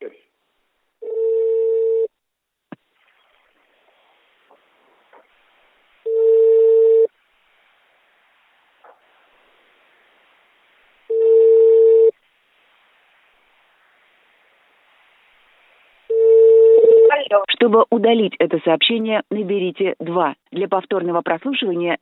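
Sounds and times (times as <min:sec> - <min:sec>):
low noise: 0:00.0 - 0:22.0
phone line ringback tone beeps: 0:01.0 - 0:02.1, 0:06.1 - 0:07.1, 0:11.1 - 0:12.1
speech: 0:17.3 - 0:22.0.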